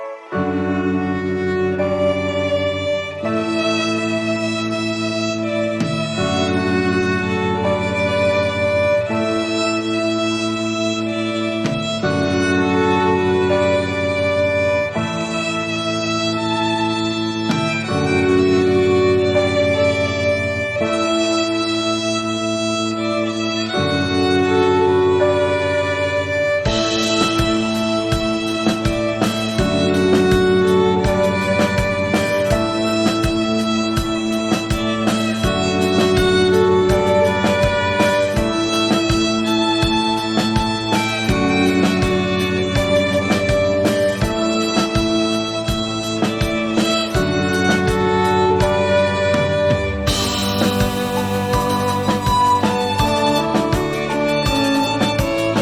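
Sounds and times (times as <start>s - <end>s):
violins: 0.1s - 55.5s
guitar: 0.3s - 55.5s
drums: 4.6s - 9.7s, 11.6s - 15.5s, 26.5s - 55.5s.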